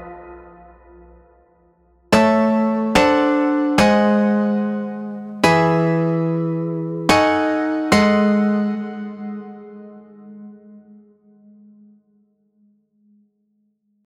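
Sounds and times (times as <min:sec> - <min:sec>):
Latin and reggaeton chord progression: 0:02.1 - 0:11.0.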